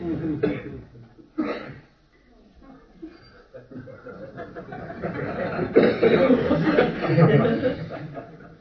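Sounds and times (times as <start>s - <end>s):
person coughing in fits: 0.4s - 0.8s, 1.4s - 1.9s, 5.8s - 6.4s
laughter: 3.5s - 8.5s.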